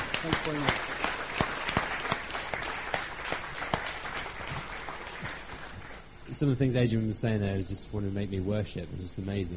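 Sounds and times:
crowd applauding: 0.0 - 6.1
speech: 0.2 - 1.1, 6.4 - 9.5.

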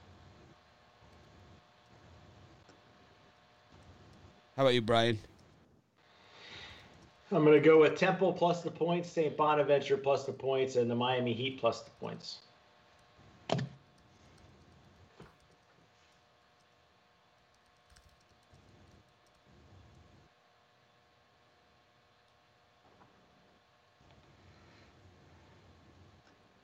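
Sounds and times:
speech: 4.6 - 5.3, 7.3 - 12.5
typing on a computer keyboard: 17.4 - 19.5.

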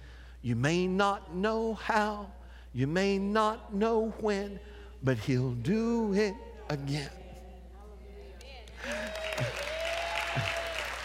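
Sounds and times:
speech: 0.4 - 7.2
crowd clapping: 8.6 - 11.0.

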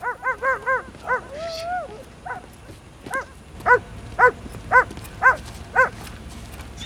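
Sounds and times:
dog whining: 0.0 - 2.5, 3.1 - 5.9
dog barking: 0.0 - 6.0.

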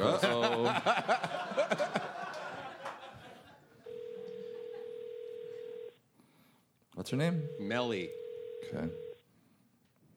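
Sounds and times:
speech: 0.0 - 1.4, 7.1 - 9.0
laughter: 0.0 - 5.1
phone dialing beeps for an Oregon number: 3.9 - 6.0, 7.5 - 9.2
telephone ringing tone: 3.9 - 6.0, 7.4 - 9.2.

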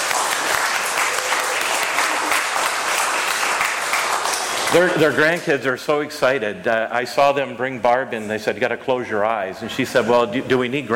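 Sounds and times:
crowd applauding: 0.0 - 5.4
speech: 4.7 - 10.9.

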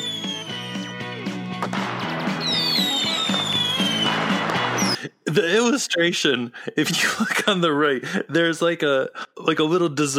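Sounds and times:
whistling firework rocket streaking overhead: 0.0 - 1.1, 2.1 - 5.0
rhythmic musical backdrop: 0.0 - 5.0
speech: 1.6 - 2.0, 5.3 - 10.1
fireworks popping and crackling: 1.6 - 4.9.

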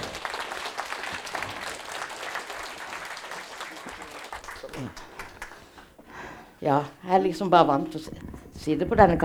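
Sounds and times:
audience applauding to welcome guests: 0.0 - 5.9
speech: 4.8 - 5.1, 6.6 - 9.2.

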